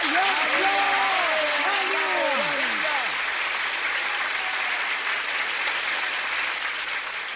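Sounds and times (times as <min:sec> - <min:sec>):
people shouting and cheering: 0:00.0 - 0:03.3, 0:03.9 - 0:05.1
crowd applause: 0:00.0 - 0:07.3.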